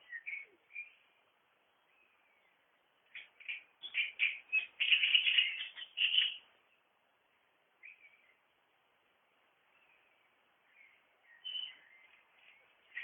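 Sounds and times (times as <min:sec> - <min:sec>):
great reed warbler singing: 0:00.0 - 0:06.9, 0:09.6 - 0:13.0.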